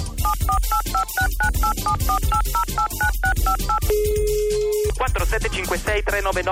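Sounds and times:
touch-tone beeps of a phone number being dialed: 0.2s - 5.0s
speech: 5.2s - 6.5s.

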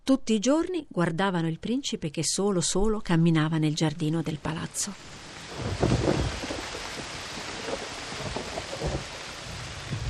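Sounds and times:
speech: 0.1s - 5.9s
steady hissing rain: 4.2s - 10.0s
stormy wind gusts: 5.0s - 10.0s.

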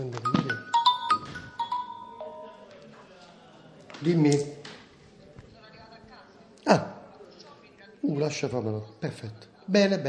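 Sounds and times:
mobile phone ringtone with electronic notes: 0.0s - 2.7s
speech: 4.0s - 4.6s, 8.2s - 10.0s.

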